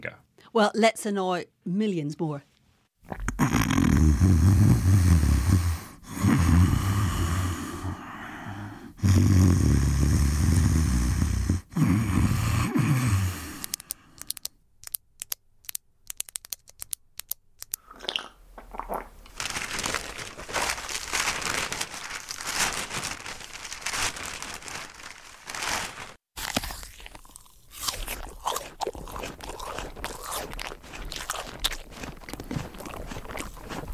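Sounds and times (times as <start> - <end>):
speech: 0.0 - 2.5, 4.2 - 4.8
person munching an apple: 3.0 - 15.0, 16.1 - 19.6, 26.4 - 33.9
newspaper rustling and crinkling: 19.4 - 26.2.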